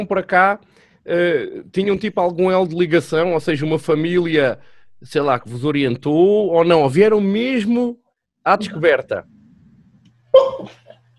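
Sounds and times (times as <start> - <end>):
speech: 0.0 - 9.4, 10.4 - 10.8
faint low hum: 1.2 - 11.1
sneeze: 10.4 - 11.0.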